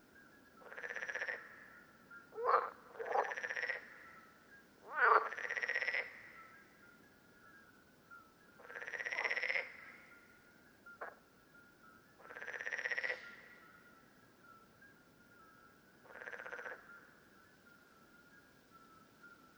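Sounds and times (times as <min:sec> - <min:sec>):
common parsley frogs calling in Lerouville, Lorraine, France: 0:00.7 - 0:01.5, 0:02.4 - 0:03.9, 0:04.9 - 0:06.2, 0:08.6 - 0:09.8, 0:12.2 - 0:13.2, 0:16.1 - 0:16.9.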